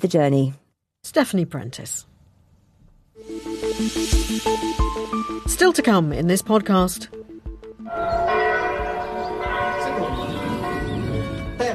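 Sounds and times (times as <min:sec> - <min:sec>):
speech: 0:00.0 - 0:02.1, 0:03.2 - 0:07.2
several church bells rung by bell ringers pealing: 0:07.9 - 0:11.7.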